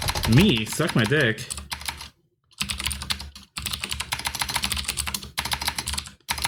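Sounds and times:
typing and backspacing on computer keyboard: 0.0s - 6.4s
speech: 0.3s - 1.6s.

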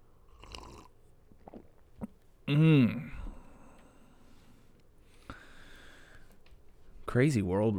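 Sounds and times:
loud slurping sip of coffee: 0.3s - 3.4s
soft mouth and handling noises: 0.6s - 2.3s
speech: 2.5s - 3.1s, 7.1s - 7.7s.

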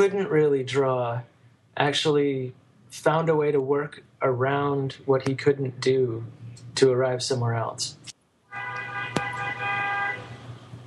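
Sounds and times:
speech: 0.0s - 8.8s
car horn honking: 8.5s - 10.5s
passing vehicles rumble in busy street traffic: 8.6s - 10.8s.

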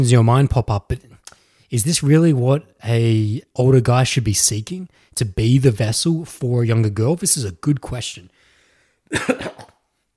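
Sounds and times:
speech: 0.0s - 1.1s, 1.7s - 8.4s, 9.1s - 9.7s
wet phlegmy coughing: 9.1s - 9.8s.

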